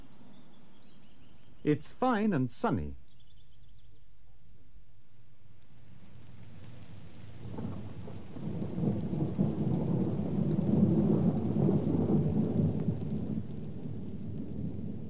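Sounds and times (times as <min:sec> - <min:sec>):
speech: 0:01.6 - 0:03.0
steady rain: 0:05.4 - 0:15.0
deep rolling rumble of thunder: 0:06.8 - 0:15.0.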